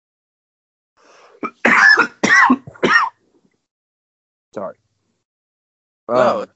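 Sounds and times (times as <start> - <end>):
harsh raspy coughing: 1.4 - 3.2
speech: 4.6 - 4.8, 6.1 - 6.5.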